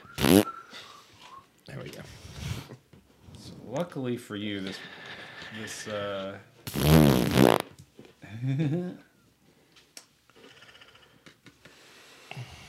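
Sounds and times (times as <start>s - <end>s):
loud flatulent blasts: 0.2s - 0.5s, 6.7s - 7.7s
speech: 3.7s - 7.0s, 8.4s - 9.1s.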